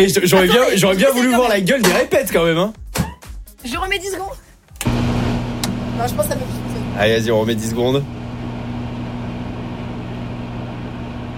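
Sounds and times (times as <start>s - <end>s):
speech: 0.0s - 2.8s, 3.6s - 5.0s, 6.0s - 8.2s
microwave oven running with electrical hum: 4.8s - 11.3s.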